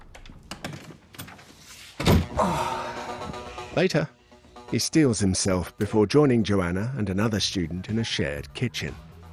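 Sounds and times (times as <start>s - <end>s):
door swinging shut with a solid thud: 2.0s - 2.4s
speech: 3.8s - 9.0s.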